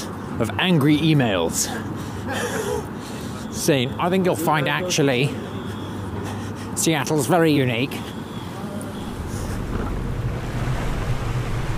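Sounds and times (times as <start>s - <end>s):
speech: 0.4s - 2.9s, 3.6s - 5.5s, 6.8s - 8.2s
water taxi boat engine rumble: 8.1s - 11.7s
waves washing against the hull: 9.0s - 11.7s
wind buffeting: 9.0s - 11.7s.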